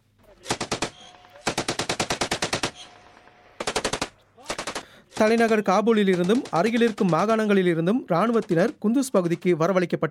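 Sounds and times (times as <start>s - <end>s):
automatic gunfire: 0.4s - 7.6s, 8.2s - 8.8s
speech: 5.2s - 10.0s.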